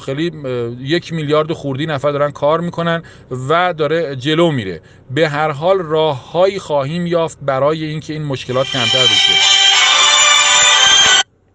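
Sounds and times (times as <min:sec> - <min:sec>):
speech: 0:00.0 - 0:09.5
mobile phone ringtone ringing during a talk: 0:08.5 - 0:11.2.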